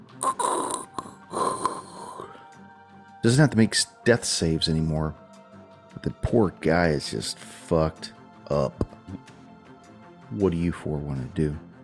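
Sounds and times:
speech: 0.2 - 0.6, 3.2 - 5.2, 6.0 - 9.4, 10.3 - 11.7
person imitating the rattling labored breath of a wounded man: 0.2 - 2.4.

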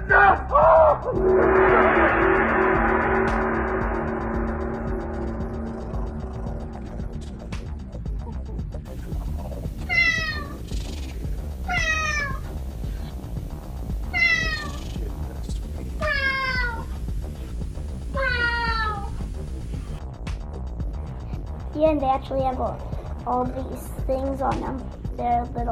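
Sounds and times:
low rumble: 1.0 - 25.7
cat meowing: 9.9 - 10.6, 11.7 - 12.5, 14.0 - 14.9, 16.0 - 16.9, 18.2 - 19.2
speech: 22.2 - 25.7.

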